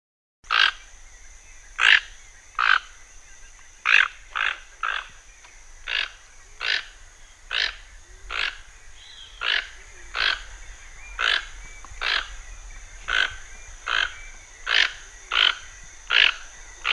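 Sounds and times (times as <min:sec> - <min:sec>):
toucan croaking in the Pantanal: 0:01.8 - 0:02.9, 0:03.8 - 0:05.2, 0:05.8 - 0:12.4, 0:13.0 - 0:16.9.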